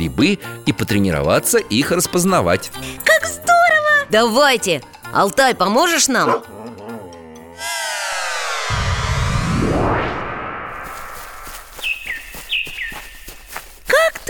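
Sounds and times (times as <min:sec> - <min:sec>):
speech: 0:00.0 - 0:03.5, 0:04.1 - 0:06.6
rising whoosh: 0:07.6 - 0:11.7
bird chirps in a sunny summer forest: 0:11.6 - 0:13.6.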